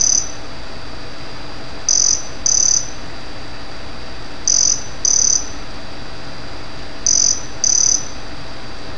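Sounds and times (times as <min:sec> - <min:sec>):
cicada song of short high flat buzzes: 0:00.0 - 0:00.4, 0:01.8 - 0:03.0, 0:04.4 - 0:05.6, 0:07.0 - 0:08.2
low hum: 0:00.0 - 0:08.9.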